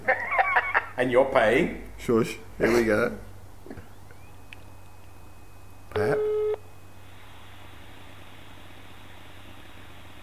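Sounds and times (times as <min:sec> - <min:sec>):
laughter: 0:00.0 - 0:01.0
speech: 0:01.0 - 0:03.3
low telephone line hum: 0:01.8 - 0:10.2
telephone ringing tone: 0:06.0 - 0:06.6.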